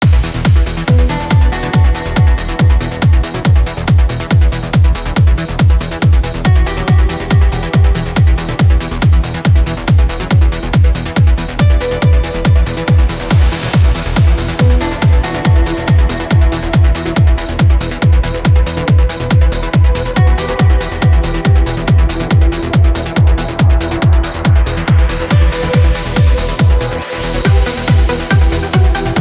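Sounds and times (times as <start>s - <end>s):
complete music mix in E minor: 0.0s - 29.2s.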